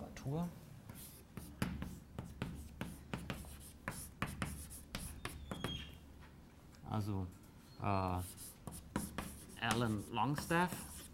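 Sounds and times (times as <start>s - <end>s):
speech: 0.2s - 0.6s, 6.9s - 8.8s, 9.6s - 10.9s
writing on a board during a lecture: 0.9s - 6.0s, 8.2s - 11.1s.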